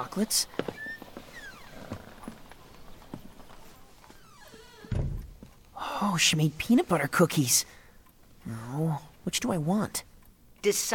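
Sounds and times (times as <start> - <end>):
speech: 0.0 - 0.8, 6.0 - 7.8, 8.5 - 10.9
shop front door hinges creaking open: 0.5 - 5.6
shop door soft low thump: 4.8 - 5.4.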